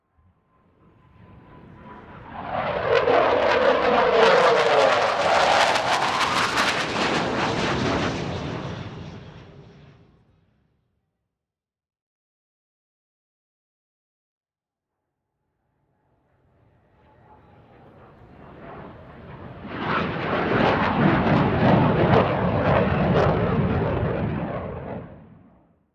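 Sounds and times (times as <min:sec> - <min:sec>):
F16 jet plane flying overhead: 0:00.0 - 0:10.6, 0:16.0 - 0:25.8.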